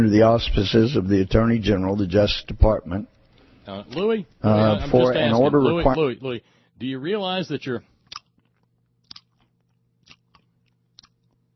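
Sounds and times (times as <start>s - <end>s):
speech: 0.0s - 3.1s, 3.7s - 7.9s
low steady hum: 0.0s - 11.5s
moist crunchy chewing at the microphone: 8.0s - 11.5s.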